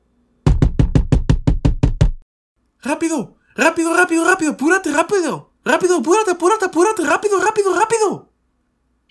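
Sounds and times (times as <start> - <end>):
impatient knocking on a bathroom door: 0.5 - 2.2
speech: 2.8 - 8.3.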